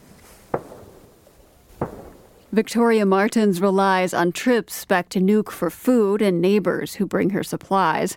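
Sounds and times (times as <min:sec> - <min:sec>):
gunshots echoing around a fjord at Qaarnaaq Greenland during reindeer hunting season: 0:00.5 - 0:02.6
speech: 0:02.5 - 0:08.1.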